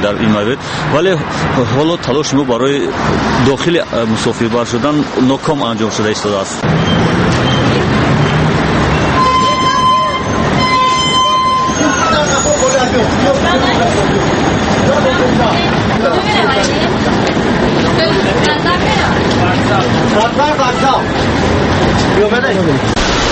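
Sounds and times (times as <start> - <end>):
speech: 0.0 - 7.3, 13.0 - 16.8, 19.8 - 23.0
overlapping passenger chatter inside a crowded city bus: 0.0 - 23.0
brief tonal beeps: 9.0 - 12.5.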